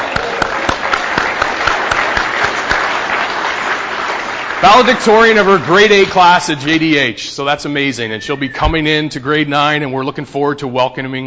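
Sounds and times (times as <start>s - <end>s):
audience clapping for a valedictorian: 0.0s - 7.0s
speech: 4.7s - 11.2s.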